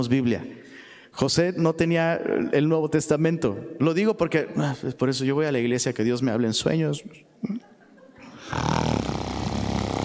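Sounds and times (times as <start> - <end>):
speech: 0.0 - 0.6, 1.2 - 7.7, 8.5 - 9.0
voice imitating snoring: 8.4 - 10.0.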